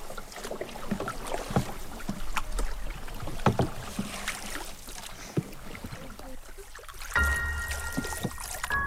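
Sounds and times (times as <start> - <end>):
water sloshing and splashing in a swamp as someone plays in the water: 0.0 - 8.8
brief tonal hum: 7.2 - 8.8.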